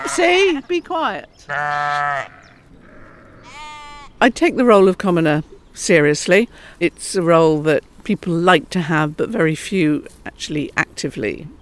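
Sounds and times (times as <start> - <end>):
sheep bleating: 0.0 - 0.4, 1.5 - 4.2
speech: 0.1 - 2.4, 4.2 - 11.6.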